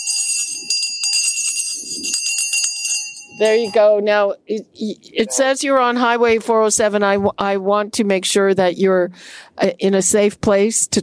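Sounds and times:
bright bell rung to greet a first-time caller: 0.0 - 4.0
speech: 3.4 - 11.0.

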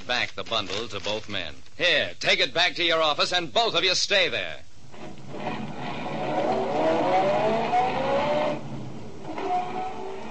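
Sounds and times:
speech: 0.1 - 5.2
car engine revving and pulling away: 4.9 - 10.2.

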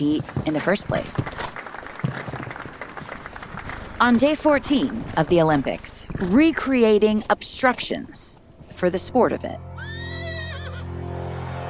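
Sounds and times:
speech: 0.0 - 2.1, 4.0 - 9.7
horse whinny: 9.8 - 10.9.

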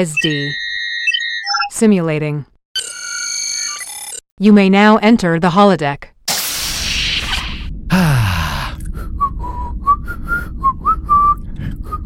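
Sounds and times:
speech: 0.0 - 0.6, 1.7 - 2.5, 4.4 - 6.1, 7.9 - 8.2
whooshing burst: 6.3 - 8.0
person whistling a tune: 9.0 - 12.0.

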